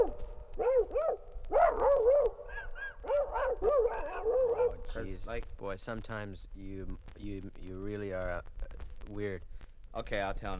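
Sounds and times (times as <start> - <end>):
voice imitating a dogfight among dogs in a submarine: 0.0 - 5.1
speech: 5.0 - 10.5.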